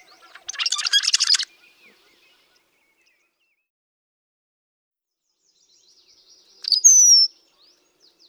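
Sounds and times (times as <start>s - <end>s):
rusty blackbird gurgling note sliding into a high squeaky whistle: 0.0s - 2.1s.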